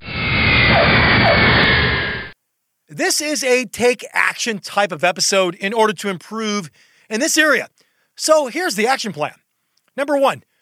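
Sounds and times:
jet airplane roar with high whine: 0.0 - 2.4
speech: 3.0 - 9.4, 10.0 - 10.5.

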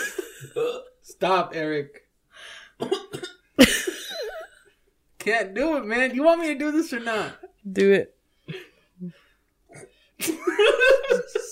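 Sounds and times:
person forcing a deliberate cough: 0.0 - 0.9, 2.8 - 4.4
speech: 1.2 - 2.0, 2.8 - 3.8, 5.2 - 11.5
laughter: 10.2 - 11.5.

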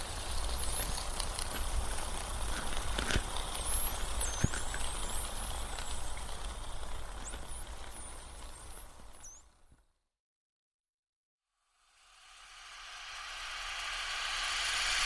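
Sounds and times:
high chirping whistles of acoustic deterrent devices underwater: 0.2 - 2.8, 3.4 - 9.6, 12.4 - 15.0.

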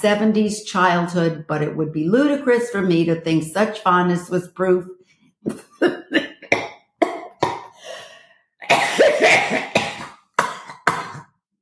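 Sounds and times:
speech: 0.0 - 6.2
person coughing in harsh raspy fits: 5.5 - 7.9, 8.6 - 11.4.

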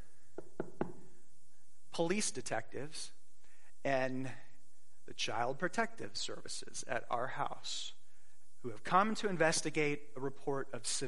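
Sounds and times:
firm knocks on a wooden door of a home: 0.4 - 1.0
speech: 2.0 - 3.2, 3.8 - 4.4, 5.1 - 8.0, 8.6 - 11.0.

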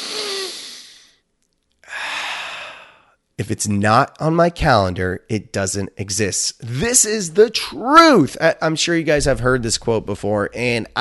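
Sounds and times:
deep breaths: 0.0 - 1.2, 1.8 - 3.2
speech: 3.4 - 11.0.

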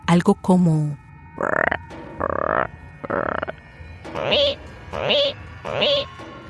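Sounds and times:
speech: 0.1 - 1.6, 4.3 - 6.2
toads and frogs croaking at night: 1.3 - 6.2.

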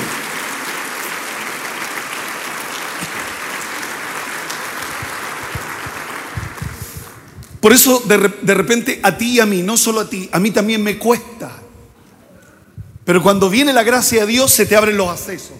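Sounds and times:
audience applause: 0.0 - 7.5
speech: 7.6 - 11.6, 13.1 - 15.5.

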